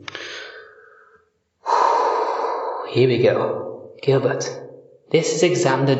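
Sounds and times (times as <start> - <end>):
deliberate deep breathing: 0.0 - 3.0
speech: 2.9 - 5.9.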